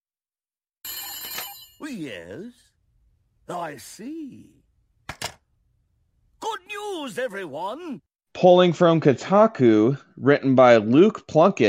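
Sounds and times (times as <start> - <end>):
telephone bell ringing: 0.8 - 2.0
speech: 1.8 - 2.6, 3.5 - 4.6, 6.8 - 11.6.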